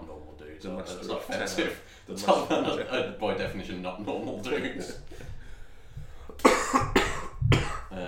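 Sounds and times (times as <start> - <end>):
speech: 0.6 - 5.2
harsh coughs: 6.4 - 8.0.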